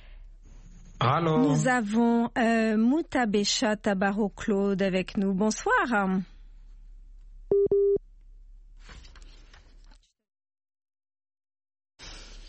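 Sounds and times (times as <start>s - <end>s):
speech: 1.1s - 6.3s
short electronic telephone beeps after a call line dropped: 7.5s - 8.0s.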